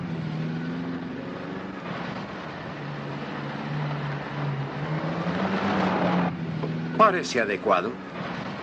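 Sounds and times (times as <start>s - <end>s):
freshly tuned Ferrari car engine running: 0.0s - 8.6s
speech: 7.1s - 8.1s.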